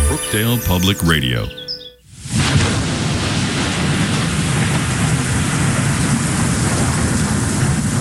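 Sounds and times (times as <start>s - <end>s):
speech: 0.1s - 1.6s
heavy rain pouring: 2.1s - 7.9s.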